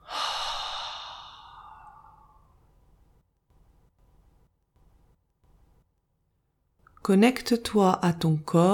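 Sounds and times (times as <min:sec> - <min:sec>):
long airy mouth exhale during a breathing exercise: 0:00.0 - 0:02.4
deep belly inhale during a breathing exercise: 0:00.0 - 0:02.6
faint hiss: 0:00.0 - 0:08.7
speech: 0:07.1 - 0:08.7.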